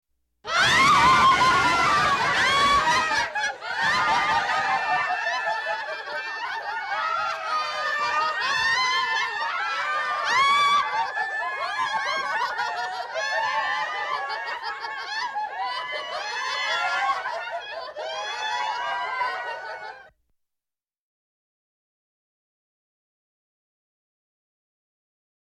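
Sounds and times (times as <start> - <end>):
women laughing hysterically: 0.5 - 20.1.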